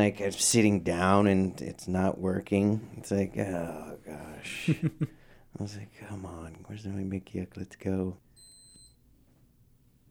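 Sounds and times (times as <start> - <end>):
speech: 0.0 - 8.3
low room hum: 0.0 - 10.1
high-pitched electronic beep: 8.4 - 9.0.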